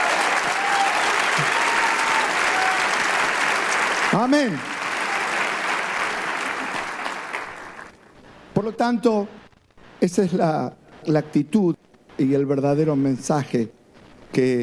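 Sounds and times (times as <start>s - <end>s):
audience applauding: 0.0s - 8.1s
speech: 4.1s - 4.7s, 8.6s - 9.4s, 10.0s - 14.6s.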